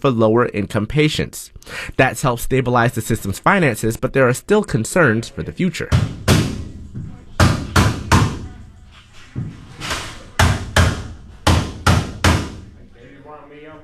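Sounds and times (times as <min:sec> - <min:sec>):
speech: 0:00.0 - 0:06.2
construction crews hammering on wall frames of an outpatient health center: 0:05.9 - 0:08.6, 0:10.3 - 0:12.7.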